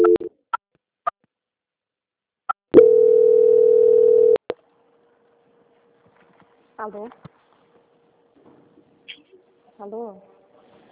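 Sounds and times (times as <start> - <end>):
telephone line tones while a call is transferred: 0.0 - 0.3, 2.8 - 4.4
speech: 6.8 - 7.3, 9.8 - 10.3.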